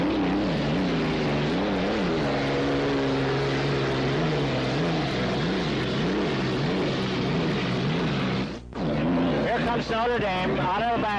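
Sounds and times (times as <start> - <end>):
racing boat engine roaring past: 0.0 - 11.1
speech: 9.8 - 11.1.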